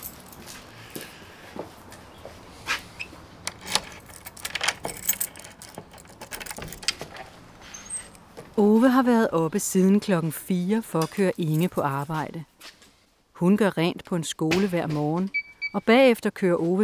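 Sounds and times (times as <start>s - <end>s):
bunch of keys jangling: 0.0s - 0.5s, 3.5s - 8.2s
speech: 8.6s - 12.5s, 13.4s - 16.8s.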